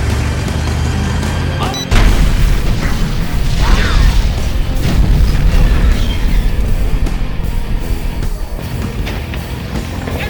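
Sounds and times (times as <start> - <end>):
low vehicle rumble of a convoy: 0.0 - 10.2
loud roaring crackling noise of the explosion: 1.9 - 9.6
deafening roadside bomb blast hitting convoy: 1.9 - 9.7.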